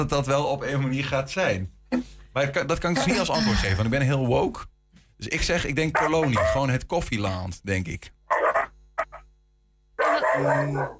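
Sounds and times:
speech: 0.0 - 8.4, 10.4 - 10.9
dogs barking and howling excitedly: 5.9 - 6.6, 8.3 - 9.2, 10.0 - 10.9.

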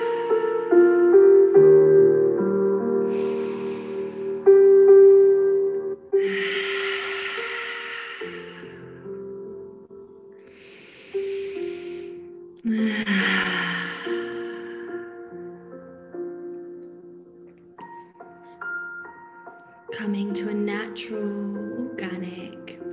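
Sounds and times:
sustained gentle musical tones: 0.0 - 22.9
slow breaths in through the nose and out through the mouth: 3.0 - 5.6, 6.2 - 9.3, 10.4 - 15.5.

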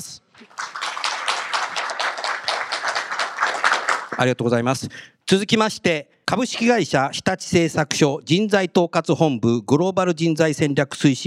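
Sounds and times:
audience applause welcoming guest: 0.4 - 4.2
speech: 4.2 - 11.2.

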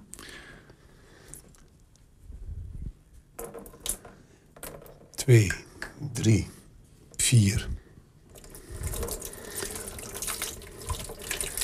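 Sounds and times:
speech: 5.3 - 6.6, 7.3 - 7.8
water poured over a photographic plate: 8.3 - 11.6.

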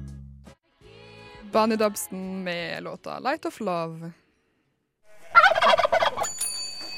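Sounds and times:
speech: 1.6 - 4.2
turkey gobbling: 5.1 - 6.3.

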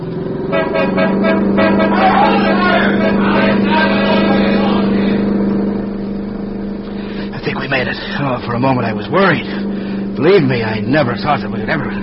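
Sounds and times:
car accelerating and driving straight through: 0.0 - 12.0
horns blaring: 0.0 - 12.0
crowd clamoring: 0.6 - 5.8
speech: 8.0 - 12.0.

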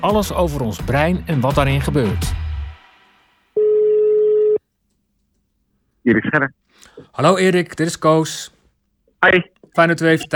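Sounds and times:
speech: 0.0 - 2.4, 6.0 - 8.6, 9.2 - 10.3
ringback tone from an outgoing telephone call: 3.6 - 4.6.

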